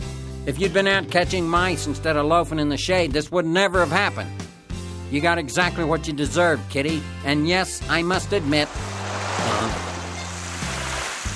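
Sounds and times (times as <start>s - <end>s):
speech: 0.4s - 4.4s, 5.1s - 8.9s
heavy torrent of water gushing from a fire hose: 8.2s - 11.3s.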